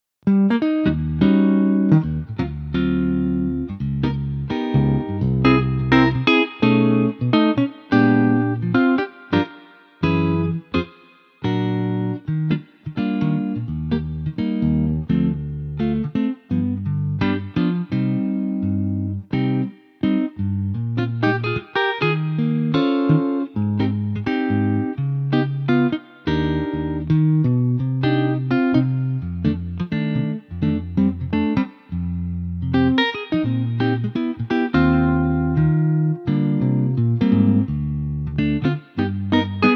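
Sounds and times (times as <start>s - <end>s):
electric guitar in E flat: 0.3s - 39.7s.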